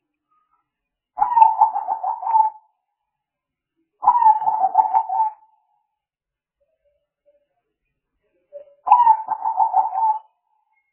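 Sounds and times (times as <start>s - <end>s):
spotted dove coo call used as a trapping lure: 1.2s - 2.6s, 4.0s - 5.4s, 8.9s - 10.3s.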